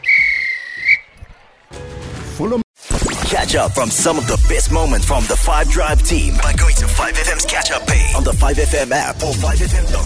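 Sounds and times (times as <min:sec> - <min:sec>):
referee's whistle blast blown to end a match: 0:00.0 - 0:01.1
speech: 0:02.4 - 0:02.6, 0:03.3 - 0:10.0.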